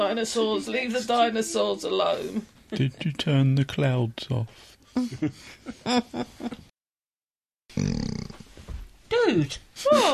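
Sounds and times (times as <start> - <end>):
speech: 0.0 - 6.6, 7.8 - 8.2, 9.2 - 10.1
long rough rumbling burp: 7.7 - 8.4.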